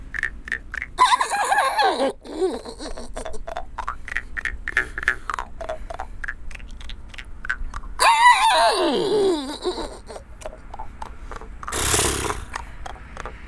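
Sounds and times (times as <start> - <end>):
steady noise: 0.0 - 13.4
person's voice imitating a horse's whinny: 1.0 - 3.5, 8.0 - 10.3.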